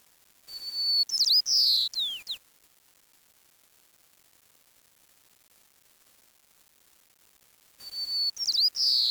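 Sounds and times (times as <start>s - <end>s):
bird call high whistle: 0.5s - 2.4s, 7.8s - 9.0s.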